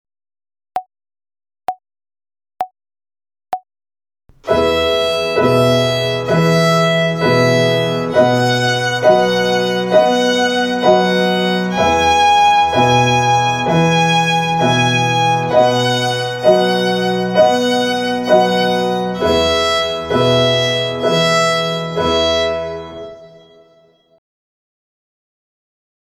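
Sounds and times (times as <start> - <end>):
violin exercise on the E string: 4.3 - 23.9.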